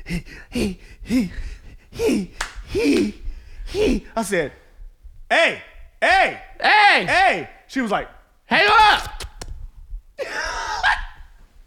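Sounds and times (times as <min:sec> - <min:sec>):
voice imitating heavy breathing over the phone: 0:00.0 - 0:04.2
speech: 0:00.1 - 0:04.6, 0:05.3 - 0:09.2.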